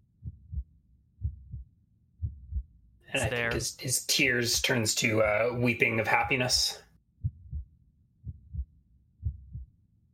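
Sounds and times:
slow heartbeat: 0.2 - 3.6, 7.2 - 10.1
speech: 3.1 - 6.8.

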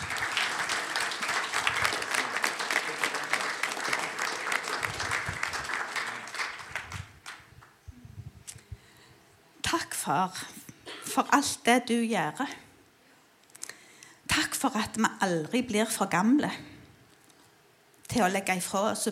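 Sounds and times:
crowd applause: 0.0 - 7.5
speech: 9.8 - 10.6, 11.2 - 12.6, 14.6 - 16.7, 18.1 - 19.1.

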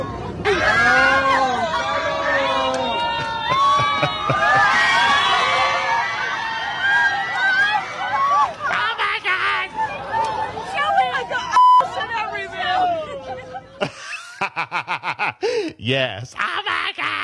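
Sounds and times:
airplane passengers cheering and whooping: 0.0 - 13.8
overlapping excited voices: 0.4 - 17.2
passengers laughing on a plane: 3.4 - 5.1, 13.2 - 15.4
speech: 15.9 - 16.6.

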